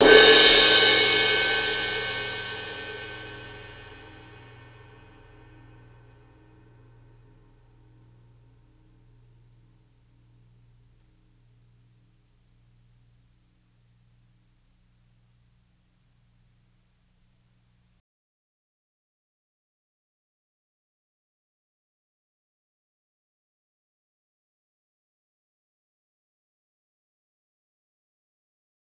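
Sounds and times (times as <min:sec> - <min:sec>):
suspended cymbal crash with stick: 0:00.0 - 0:13.3.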